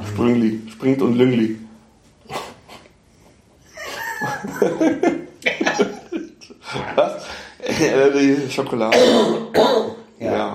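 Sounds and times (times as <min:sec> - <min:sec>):
speech: 0:00.2 - 0:01.6, 0:04.6 - 0:05.2, 0:07.0 - 0:10.5
laughter: 0:03.8 - 0:08.0
person coughing: 0:08.9 - 0:10.0.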